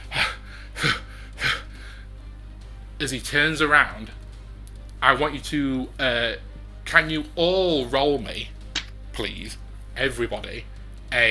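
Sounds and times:
person performing exhausted panting of a character: 0.0 - 2.1
quiet low hum: 0.0 - 11.2
speech: 3.0 - 4.2, 5.0 - 8.6, 9.2 - 11.2.

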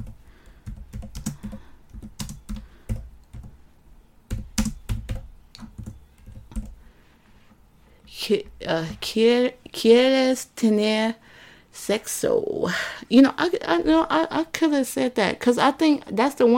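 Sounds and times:
typing on a computer keyboard: 0.0 - 3.6, 4.3 - 6.8
speech: 8.3 - 11.2, 11.8 - 16.5.

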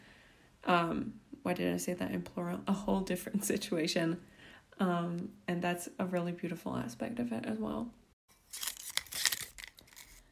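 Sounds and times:
speech: 0.7 - 8.8
paper tearing and crinkling: 8.3 - 10.3.

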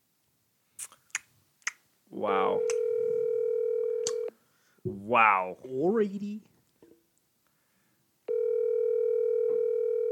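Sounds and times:
electronic telephone tone of an unanswered outgoing call: 2.4 - 4.3, 8.3 - 10.1
speech: 4.9 - 6.5.

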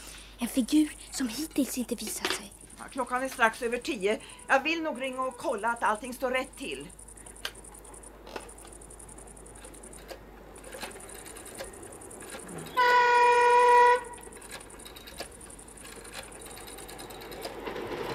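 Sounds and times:
speech: 0.4 - 7.0
faint clicks: 0.9 - 18.1
passing freight train horn blast: 12.7 - 14.1.

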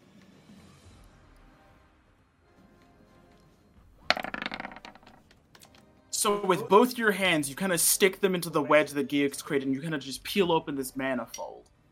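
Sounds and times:
dice clattering onto a hard tabletop: 4.0 - 5.4
speech: 6.2 - 11.6.

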